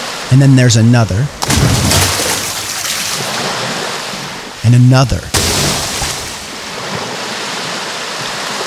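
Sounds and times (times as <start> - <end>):
rushing churning river water: 0.0 - 0.4, 1.4 - 8.6
speech: 0.3 - 1.6, 4.7 - 5.3
deep splashing thuds of boulder plunging into river: 1.4 - 4.4, 5.2 - 7.8
water sloshing: 1.4 - 4.6, 5.2 - 8.6.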